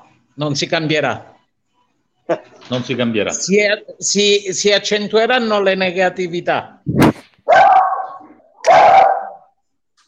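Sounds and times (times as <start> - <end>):
speech: 0.4 - 1.3, 2.3 - 7.2
dog barking with a whining tone: 7.5 - 9.5.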